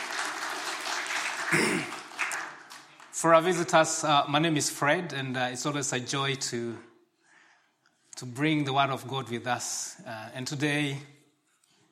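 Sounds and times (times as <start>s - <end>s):
audience clapping for visitors at a church gathering: 0.0s - 4.0s
speech: 3.2s - 6.9s, 8.2s - 11.2s.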